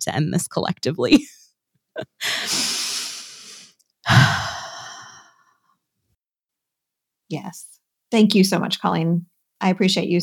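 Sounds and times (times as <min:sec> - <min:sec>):
speech: 0:00.0 - 0:01.4, 0:02.0 - 0:02.7, 0:07.3 - 0:10.2
person taking a slow deep breath: 0:02.2 - 0:05.6.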